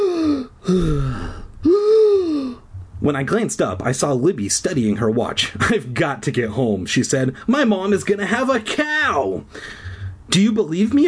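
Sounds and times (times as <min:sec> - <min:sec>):
person imitating sucking in deep breaths after running: 0:00.0 - 0:02.7, 0:09.5 - 0:10.2
speech: 0:00.7 - 0:01.4, 0:03.1 - 0:11.0.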